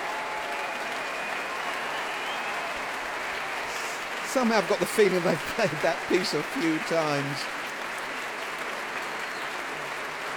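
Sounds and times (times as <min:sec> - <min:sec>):
concert audience applauding wildly after chamber music: 0:00.0 - 0:10.3
laughter: 0:03.6 - 0:07.6
speech: 0:04.4 - 0:07.6.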